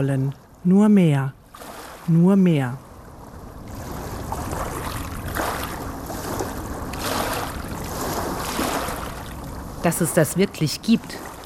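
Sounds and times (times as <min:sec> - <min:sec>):
speech: 0:00.0 - 0:01.4, 0:02.1 - 0:02.9, 0:09.8 - 0:11.3
waves dragging over sand and small pebbles: 0:03.4 - 0:11.4.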